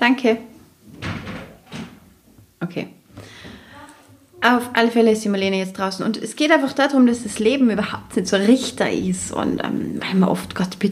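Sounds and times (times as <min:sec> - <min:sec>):
speech: 0:00.0 - 0:00.5, 0:02.6 - 0:03.3, 0:04.4 - 0:10.9
door swinging and shutting with dull knocks: 0:00.9 - 0:02.1.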